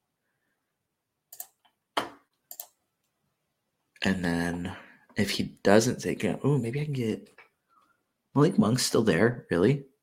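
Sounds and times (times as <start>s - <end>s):
computer keyboard keys clicking: 1.3s - 2.8s
speech: 4.0s - 7.4s, 8.4s - 9.9s.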